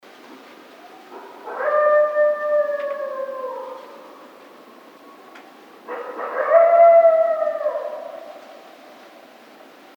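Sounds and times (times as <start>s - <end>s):
coyote howling: 0.7s - 4.3s, 5.9s - 8.4s.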